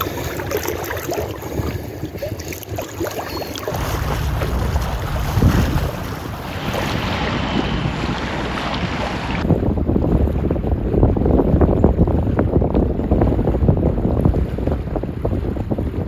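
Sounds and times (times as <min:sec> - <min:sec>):
river water rushing and gurgling: 0:00.0 - 0:09.5
wind gusts buffeting: 0:03.7 - 0:16.0.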